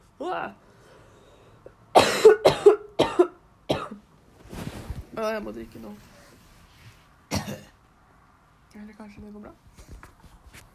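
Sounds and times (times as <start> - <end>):
speech: 0.2 - 0.6, 5.2 - 6.1, 8.8 - 9.9
person coughing on a chip stuck in the throat: 2.0 - 4.0, 7.3 - 7.8.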